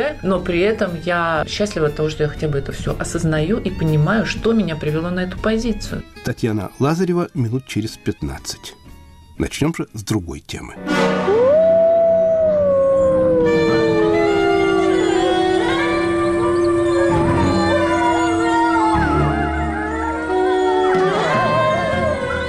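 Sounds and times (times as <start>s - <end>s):
speech: 0.1s - 8.8s, 9.4s - 11.3s
several wolves howling together in chorus: 11.2s - 22.4s.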